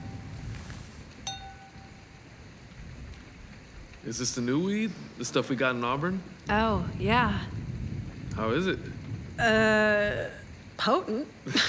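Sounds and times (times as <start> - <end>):
glasses clinking in a toast: 1.2 - 2.1
speech: 4.0 - 7.6, 8.4 - 11.6.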